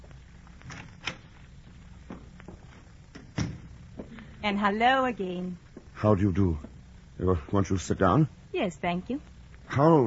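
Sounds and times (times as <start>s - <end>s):
door opening and closing: 3.1s - 3.8s
door thud shutting: 3.2s - 3.7s
speech: 4.4s - 10.0s.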